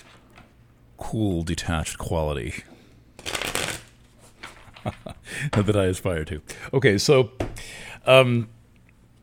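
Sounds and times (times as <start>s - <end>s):
speech: 1.1s - 2.7s, 4.8s - 8.6s
tarot cards slapping together: 3.2s - 4.0s
slightly sticky tarot deck being shuffled by hand: 3.2s - 5.0s.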